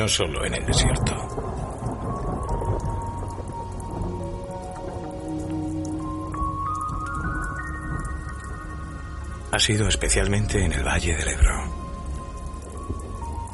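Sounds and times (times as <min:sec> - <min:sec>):
speech: 0:00.0 - 0:01.4, 0:09.6 - 0:11.7
deep rumble of thunder: 0:00.0 - 0:13.5
heavy storm rain pouring: 0:00.0 - 0:13.5.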